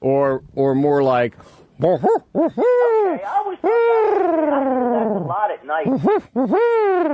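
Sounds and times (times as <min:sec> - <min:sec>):
speech: 0:00.0 - 0:07.1
person imitating barred owl hoots: 0:01.8 - 0:07.1.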